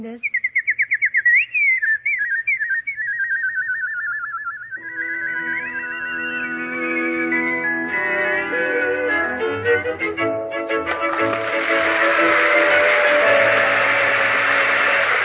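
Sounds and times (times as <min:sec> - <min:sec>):
speech: 0:00.0 - 0:00.4
nightingale singing: 0:00.0 - 0:08.2
soft sustained musical tones: 0:04.8 - 0:15.2.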